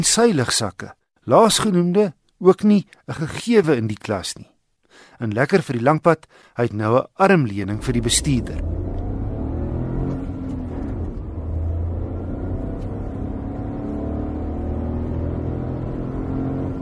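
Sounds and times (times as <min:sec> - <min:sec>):
speech: 0:00.0 - 0:08.9
small 900 cc three-cylinder turbocharged petrol car engine accelerating on the Highveld: 0:07.7 - 0:16.8.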